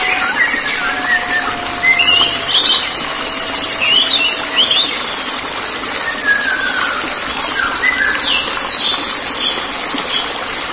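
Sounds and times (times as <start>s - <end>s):
White-rumped shama whistled song: 0.0s - 10.3s.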